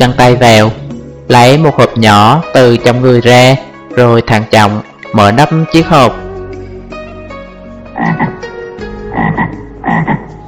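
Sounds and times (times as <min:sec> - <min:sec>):
speech: 0:00.0 - 0:06.2, 0:10.0 - 0:10.2
red frog croaking: 0:07.9 - 0:08.5, 0:09.1 - 0:10.4.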